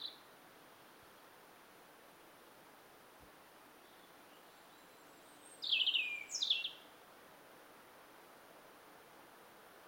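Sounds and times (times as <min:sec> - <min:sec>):
background hiss: 0:00.0 - 0:09.8
European robin Erithacus rubecula twittering: 0:05.6 - 0:06.8.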